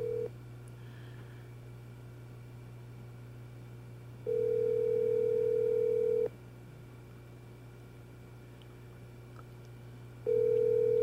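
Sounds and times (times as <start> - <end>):
outgoing phone call ringback tone through a handset: 0.0 - 0.3, 4.3 - 6.3, 10.3 - 11.0.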